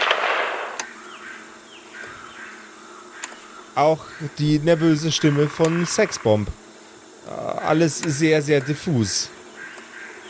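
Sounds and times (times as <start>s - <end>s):
sharp gunshots on a tape recording: 0.0s - 0.8s
steady hiss of tape noise: 0.0s - 10.2s
speech: 3.8s - 6.6s, 7.3s - 9.4s.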